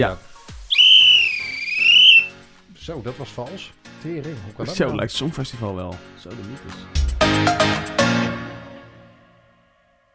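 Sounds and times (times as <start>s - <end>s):
speech: 0.0s - 0.2s, 2.9s - 8.4s
long shrill whistle blast: 0.7s - 2.4s.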